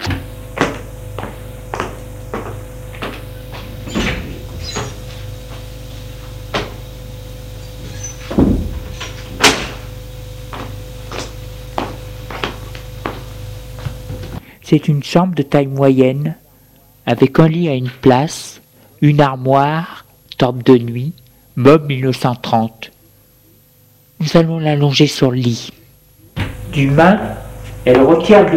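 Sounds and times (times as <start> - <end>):
steady low hum: 0.2 - 14.5
right-hand door in a corridor opening into a bedroom: 3.0 - 5.3, 7.8 - 9.8
speech: 14.7 - 16.4, 17.1 - 22.9, 24.2 - 25.8, 26.7 - 28.5.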